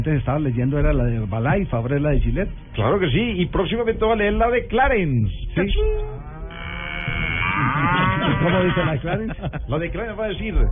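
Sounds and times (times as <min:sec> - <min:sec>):
speech: 0:00.0 - 0:06.3, 0:08.3 - 0:10.6
cow mooing in a long low bellow: 0:06.1 - 0:09.0
laughter: 0:07.8 - 0:10.1.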